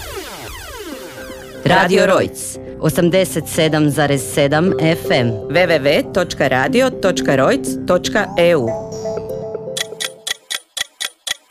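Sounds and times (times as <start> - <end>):
speech: 1.6 - 9.0
clock ticking: 9.8 - 11.4
fading tonal sound: 9.8 - 11.4.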